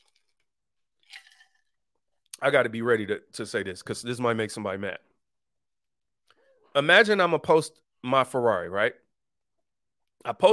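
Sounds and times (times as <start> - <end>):
sipping a drink: 0.0 - 1.8
speech: 2.4 - 5.1, 6.8 - 9.0, 10.2 - 10.5.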